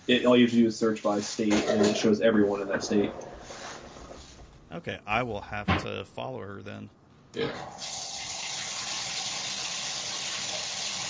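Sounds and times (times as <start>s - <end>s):
speech: 0.1s - 3.6s, 4.7s - 8.1s
brief voice-like murmur: 4.7s - 7.6s
water running from a tap: 7.8s - 11.0s.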